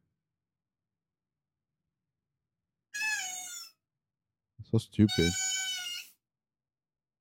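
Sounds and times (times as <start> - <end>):
speech: 4.6 - 5.4
recorded cat meowing: 5.1 - 6.1.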